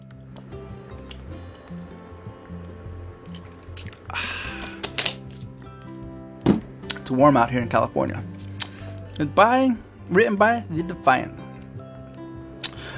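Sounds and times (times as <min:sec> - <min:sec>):
person sipping and swallowing water: 0:00.9 - 0:01.3, 0:03.3 - 0:05.5
speech: 0:07.1 - 0:08.4, 0:09.2 - 0:11.4.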